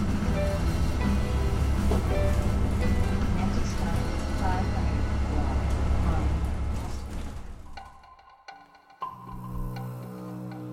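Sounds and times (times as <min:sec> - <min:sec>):
rain on a porch roof outside a house in Vancouver: 0:00.0 - 0:07.7
quiet tonal passage: 0:00.0 - 0:10.7.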